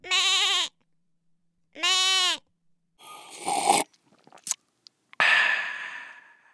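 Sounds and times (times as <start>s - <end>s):
goat bleating: 0.0s - 0.8s, 1.8s - 2.4s
loud breathy hiss: 5.2s - 6.5s.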